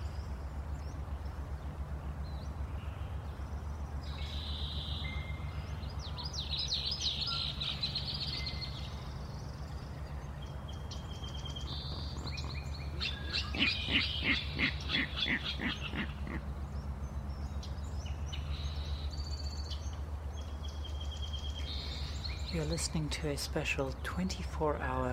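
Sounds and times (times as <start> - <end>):
steady low hum: 0.0 - 25.1
Virginia Rail giving harsh clicking kadik calls in a marsh: 11.1 - 16.4
speech: 14.0 - 16.5, 22.6 - 25.1.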